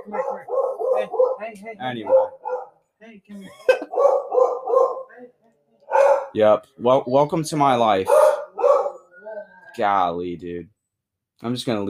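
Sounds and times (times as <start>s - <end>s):
dog barking with yips and woofs: 0.0s - 2.8s, 3.8s - 5.2s, 5.9s - 6.4s, 8.0s - 9.1s
speech: 0.1s - 2.4s, 3.0s - 5.4s, 6.3s - 8.3s, 9.8s - 10.7s, 11.4s - 11.8s.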